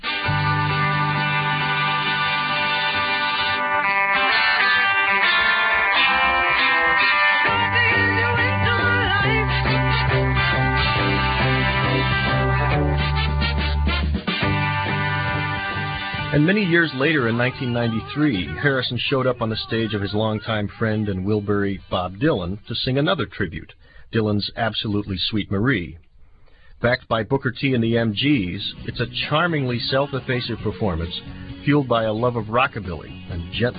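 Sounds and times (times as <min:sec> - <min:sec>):
full-band R&B rock song with brassy horns, lead guitar and bass: 0:00.0 - 0:20.4, 0:28.6 - 0:33.7
speech: 0:16.4 - 0:26.0, 0:26.8 - 0:33.7.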